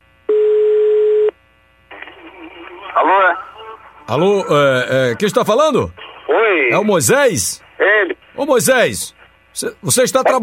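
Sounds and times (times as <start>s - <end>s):
telephone dial tone while placing a call: 0.3s - 1.4s
speech: 4.1s - 10.4s.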